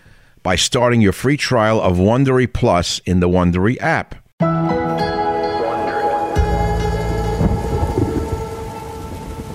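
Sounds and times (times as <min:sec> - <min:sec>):
speech: 0:00.4 - 0:04.2
sustained tonal hums: 0:05.1 - 0:09.5
steady rain pouring down in Orangeburg, New York: 0:05.7 - 0:09.5
low rumbling: 0:06.1 - 0:09.5.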